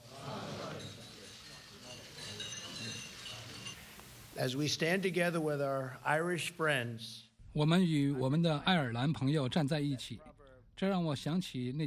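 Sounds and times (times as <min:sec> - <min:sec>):
many glasses clinking during a toast: 0:00.4 - 0:04.3
speech: 0:04.4 - 0:11.8.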